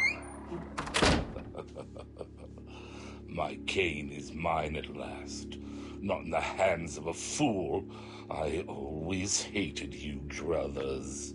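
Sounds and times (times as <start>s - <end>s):
door opening with a whoosh as people exit during a fire evacuation: 0.0s - 1.5s
speech: 0.5s - 0.8s, 1.6s - 11.3s
laughter: 1.3s - 3.5s.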